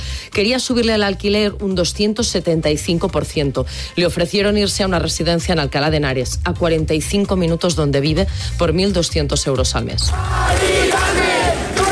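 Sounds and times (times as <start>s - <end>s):
speech: 0.4s - 11.3s
crowd of protesters shouting and chanting at an overnight protest: 10.1s - 11.9s.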